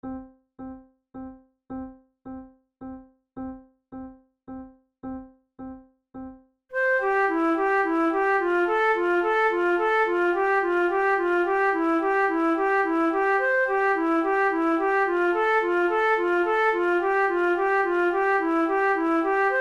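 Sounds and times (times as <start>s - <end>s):
flute playing: 6.8s - 19.6s.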